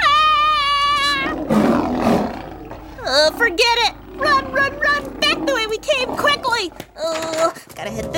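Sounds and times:
lion roaring: 0.9 - 6.8
speech: 4.7 - 8.1.

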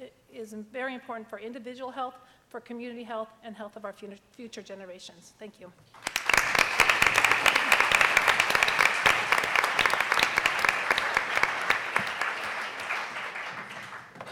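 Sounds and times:
speech: 0.4 - 6.2
audience applause for a group of speakers: 6.0 - 14.3.

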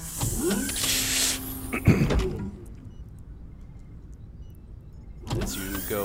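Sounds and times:
door pulled open with a scraping creaky sweep: 0.0 - 6.0
speech: 1.7 - 2.3.

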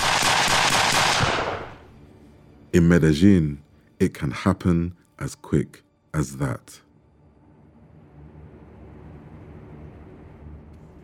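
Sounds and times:
handgun shots on a street in Medellín: 0.0 - 1.8
speech: 2.7 - 6.8.

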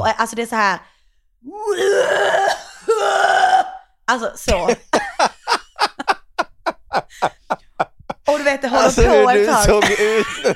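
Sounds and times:
speech: 0.0 - 3.5, 4.1 - 4.9, 8.9 - 10.5
voice imitating a man's harsh heavy coughing in a toilet: 1.8 - 3.8, 4.4 - 5.2, 8.8 - 10.5
laughter: 4.6 - 10.5.

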